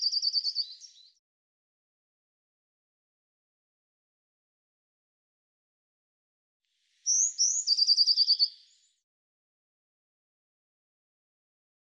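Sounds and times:
Eurasian blue tit phrases of high thin notes and trills: 0.0 - 1.2, 7.1 - 9.0.

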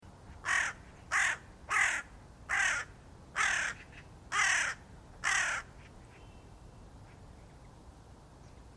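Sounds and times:
quiet background noise: 0.0 - 8.7
bird giving harsh hoarse cawing calls: 0.4 - 6.3.

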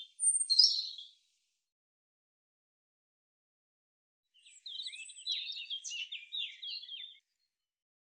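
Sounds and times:
European robin singing warbled phrases and thin trilling notes: 0.0 - 1.3, 4.3 - 7.5.

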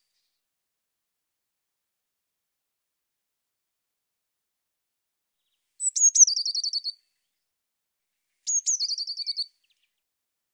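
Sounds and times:
bird song with high whistle, sharp chips and descending trill: 5.4 - 7.5, 8.4 - 10.1.

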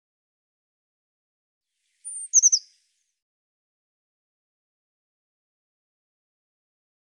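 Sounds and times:
Eurasian blue tit call: 2.1 - 2.6.

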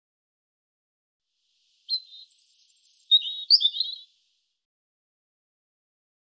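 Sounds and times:
European robin song phrase with whistles and warbling twitters: 1.6 - 4.2.

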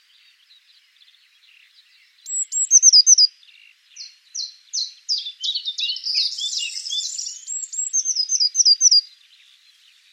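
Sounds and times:
Eurasian blue tit high hooked notes and trills: 0.0 - 10.1
Eurasian blue tit buzzy churring burst: 2.3 - 3.3, 5.8 - 9.0.

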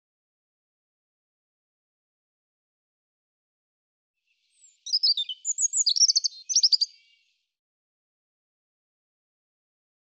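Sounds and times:
European robin song: 4.3 - 7.4.

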